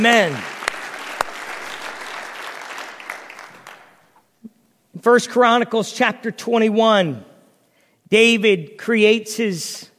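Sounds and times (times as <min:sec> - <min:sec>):
speech: 0:00.0 - 0:00.5, 0:05.0 - 0:07.3, 0:08.1 - 0:09.9
audience clapping hands in applause: 0:00.0 - 0:04.2.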